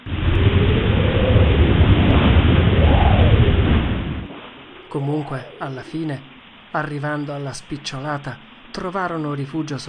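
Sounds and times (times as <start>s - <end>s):
deep rolling thunder in a hurricane: 0.0s - 5.6s
roaring hurricane wind: 0.0s - 9.0s
speech: 5.7s - 9.8s.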